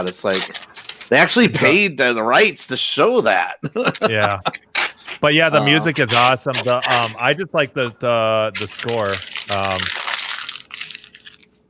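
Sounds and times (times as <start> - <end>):
paper crunched and crinkled as an advertisement is separated: 0.0 - 1.4, 4.8 - 7.3, 8.5 - 11.6
speech: 0.0 - 10.0
laughter: 3.4 - 8.6.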